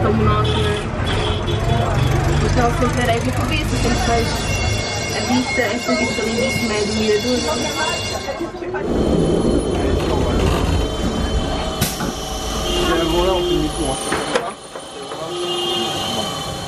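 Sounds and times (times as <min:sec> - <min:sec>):
speech: 0:00.0 - 0:01.2, 0:02.6 - 0:04.6, 0:05.2 - 0:09.5, 0:12.9 - 0:14.4
tram running and squealing to a stop at Calçada de São Vicente: 0:00.0 - 0:16.6
sharp clank: 0:11.7 - 0:12.4.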